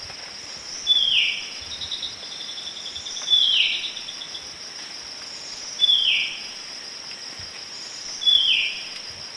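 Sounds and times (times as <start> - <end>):
high insect drone: 0.0 - 9.3
white-breasted wood wren Henicorhina leucosticta song in eastern lowlands of South America: 0.7 - 4.4, 5.4 - 6.5, 7.8 - 8.9.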